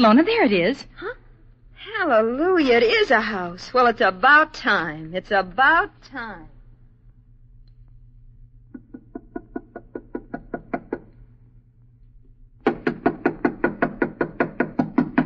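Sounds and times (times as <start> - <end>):
speech: 0.0 - 1.0, 2.0 - 6.5
knuckles knocking on the wooden door of a house: 8.7 - 11.2, 12.6 - 15.2.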